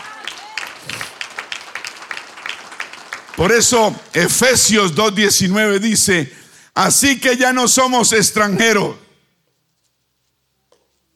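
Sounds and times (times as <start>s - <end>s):
church audience applause: 0.0s - 4.7s
speech: 3.4s - 9.0s.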